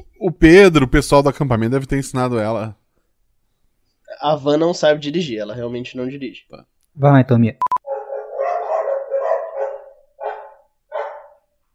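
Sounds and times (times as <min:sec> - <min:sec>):
speech: 0:00.2 - 0:02.8, 0:04.1 - 0:07.7
dogs barking: 0:07.8 - 0:11.5.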